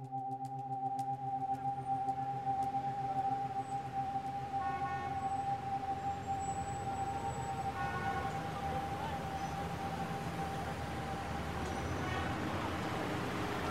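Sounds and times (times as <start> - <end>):
sustained high-pitched whine: 0.2 - 13.6
steady street traffic rumbling at a roadside bus stop: 3.9 - 13.6.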